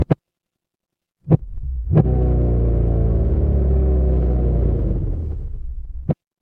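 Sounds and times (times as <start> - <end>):
mechanical engine: 1.4 - 6.1.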